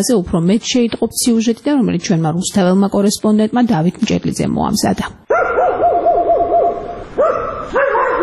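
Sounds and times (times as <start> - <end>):
speech: 0.0 - 5.5
stray dogs barking and yelping on a city street at dusk: 5.3 - 8.2.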